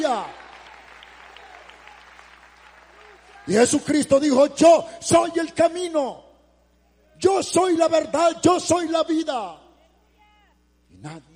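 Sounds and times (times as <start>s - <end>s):
faint congregation applause during a church service: 0.0s - 3.9s
speech: 0.1s - 0.4s, 3.4s - 6.2s, 7.2s - 9.6s, 11.0s - 11.3s.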